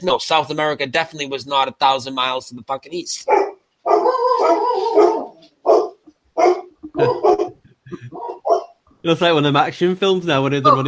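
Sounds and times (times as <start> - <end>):
speech: 0.0 - 5.3, 7.0 - 7.3, 9.0 - 10.8
dog barking and yowling: 3.3 - 8.8.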